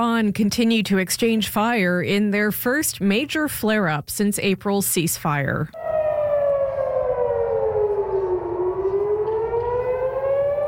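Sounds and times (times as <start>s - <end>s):
speech: 0.0s - 5.8s
air raid warning sirens wailing: 5.8s - 10.6s
low rumbling background: 5.8s - 10.6s.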